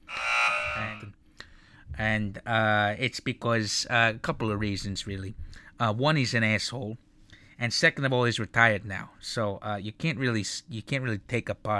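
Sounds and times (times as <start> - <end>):
harsh buzzing game-show style buzzer: 0.0 - 1.1
speech: 1.9 - 11.7.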